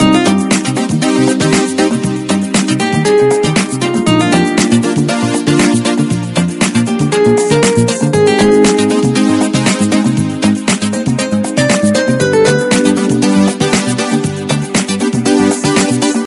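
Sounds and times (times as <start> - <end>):
Latin background music ringtone: 0.0 - 16.2.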